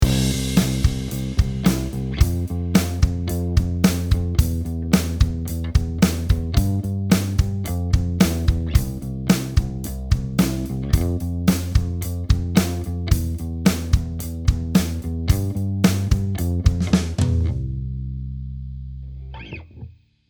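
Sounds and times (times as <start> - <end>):
bass picking: 0.0 - 19.9.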